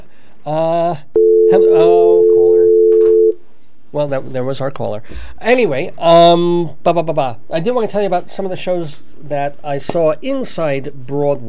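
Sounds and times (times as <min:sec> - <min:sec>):
speech: 0:00.4 - 0:01.1, 0:04.0 - 0:11.4
buzzing harmonic telephone line tone: 0:01.2 - 0:03.4.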